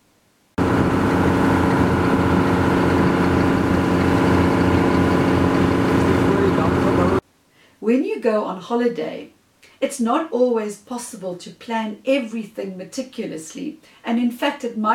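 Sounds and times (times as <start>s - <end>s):
long-tail boat engine on Chu Lan Lake in Thailand: 0.6s - 7.2s
speech: 7.9s - 14.9s.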